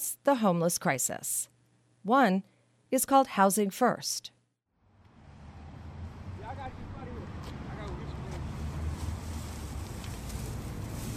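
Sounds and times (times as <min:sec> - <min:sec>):
speech: 0:00.2 - 0:04.4
cars passing on a city street near downtown Oakland: 0:04.8 - 0:11.1.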